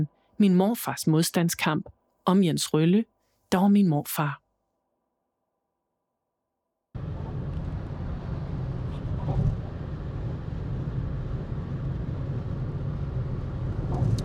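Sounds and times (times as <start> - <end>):
speech: 0.0 - 4.4
road and wind roar of a car driving onto the bridge between Denmark and Sweden: 7.0 - 14.2.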